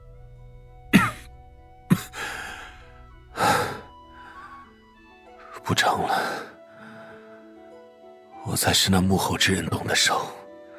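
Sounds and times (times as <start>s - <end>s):
badly injured man coughing low: 1.0s - 1.3s, 1.9s - 2.4s
badly injured man's breathy rasping exhalations: 1.9s - 7.4s
speech: 5.7s - 6.5s, 8.5s - 10.4s.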